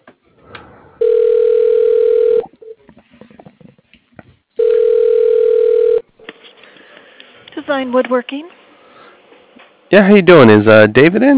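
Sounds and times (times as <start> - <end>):
phone line ringing with long steady electronic tones: 1.0 - 2.8, 4.6 - 6.1
speech: 7.7 - 8.6, 9.9 - 11.3.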